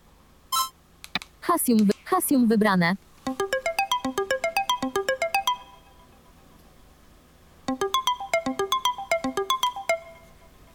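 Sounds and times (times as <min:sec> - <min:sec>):
speech: 0:01.5 - 0:03.4
mobile phone alarm tone with bright rising electronic notes: 0:03.3 - 0:06.2, 0:07.7 - 0:10.5.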